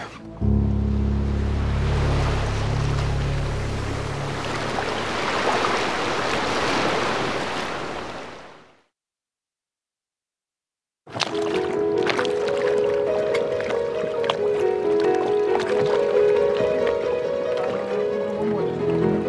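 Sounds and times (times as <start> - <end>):
music with sustained tones: 0.0 - 5.9, 11.4 - 19.2
water lapping against the hull of a moored boat: 0.0 - 8.7, 11.1 - 19.2.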